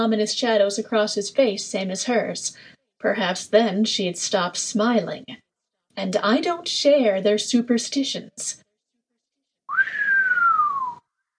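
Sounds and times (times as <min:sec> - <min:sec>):
speech: 0:00.0 - 0:05.4, 0:06.0 - 0:08.6
low human whistle: 0:09.7 - 0:11.0.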